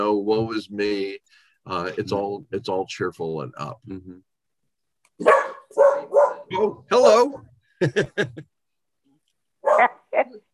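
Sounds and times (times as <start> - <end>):
speech: 0.0 - 4.3, 5.2 - 5.9, 6.5 - 8.5, 9.6 - 10.5
dog barking: 5.2 - 6.6, 9.6 - 10.0
laughter: 7.8 - 8.5.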